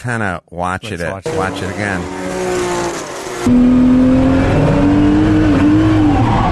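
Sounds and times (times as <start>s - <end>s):
speech: 0.0s - 2.2s, 3.4s - 3.9s
historic racing car engine roaring while drifting through a corner on throttle: 1.2s - 6.5s
racing car tire squeal: 5.7s - 6.5s.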